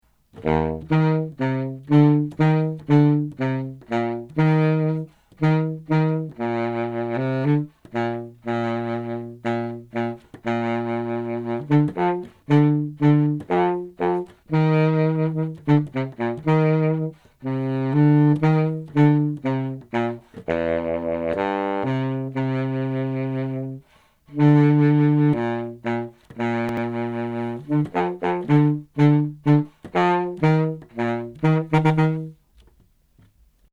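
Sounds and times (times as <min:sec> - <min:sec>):
baritone saxophone etude: 0:00.2 - 0:32.6.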